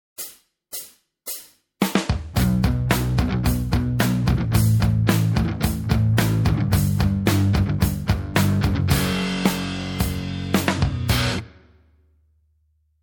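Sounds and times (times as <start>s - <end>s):
guitar playing basics: 2.3s - 11.8s.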